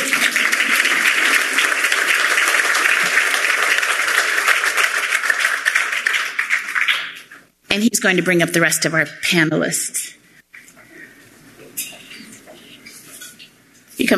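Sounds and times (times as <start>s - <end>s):
crowd applauding: 0.0s - 7.3s
speech: 7.8s - 10.0s.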